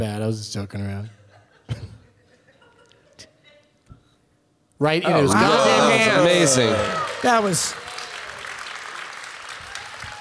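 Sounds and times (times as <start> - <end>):
speech: 0.0 - 1.9, 4.8 - 7.8
laughter: 1.2 - 3.7, 5.1 - 7.1
applause from a group of people: 5.4 - 10.1.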